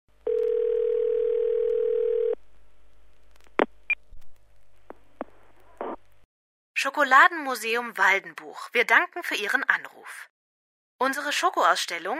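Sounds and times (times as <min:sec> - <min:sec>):
steady telephone line tone: 0:00.2 - 0:02.4
speech: 0:06.8 - 0:10.3, 0:11.0 - 0:12.1.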